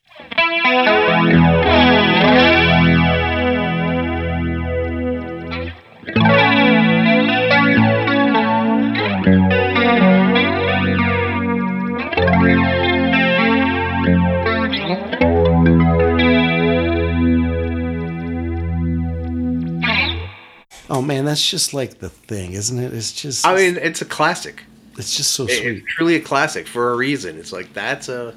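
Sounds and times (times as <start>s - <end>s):
speech: 0.7s - 1.4s, 21.3s - 28.3s
flanger pedal effect swirling over sustained guitar chords: 0.9s - 20.6s.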